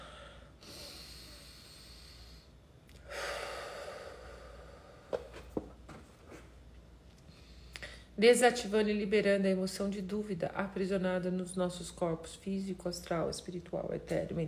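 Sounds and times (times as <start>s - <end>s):
breathing in and out during a guided meditation exercise: 0.0s - 5.5s, 7.2s - 8.2s
speech: 8.2s - 14.4s.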